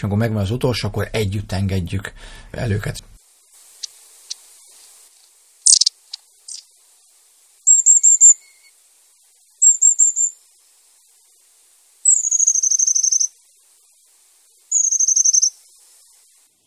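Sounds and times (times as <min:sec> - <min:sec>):
speech: 0:00.0 - 0:03.1
long-tailed tit Aegithalos caudatus calling: 0:05.6 - 0:06.8, 0:07.6 - 0:08.8, 0:09.5 - 0:10.4, 0:12.0 - 0:13.3, 0:14.7 - 0:15.6.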